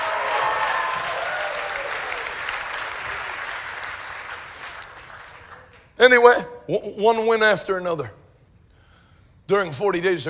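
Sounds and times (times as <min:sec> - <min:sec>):
crowd clapping unto the Lord: 0:00.0 - 0:06.0
speech: 0:06.0 - 0:08.2, 0:09.5 - 0:10.2.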